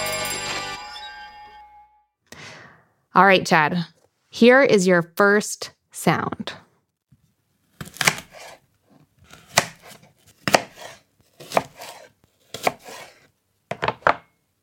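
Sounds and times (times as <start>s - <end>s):
speech: 3.2s - 6.6s
knife chopping food on a cutting board: 7.7s - 8.6s, 9.2s - 14.3s.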